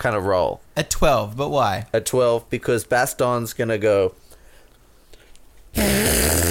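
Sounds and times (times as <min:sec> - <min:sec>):
speech: 0:00.0 - 0:04.2, 0:05.8 - 0:06.4
armpit fart noise: 0:05.8 - 0:06.4.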